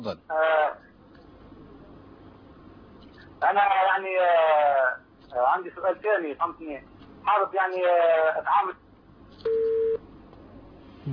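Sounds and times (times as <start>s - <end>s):
speech: 0.0s - 0.9s, 3.4s - 8.8s
phone line tone as a caller's call drops: 9.4s - 10.0s.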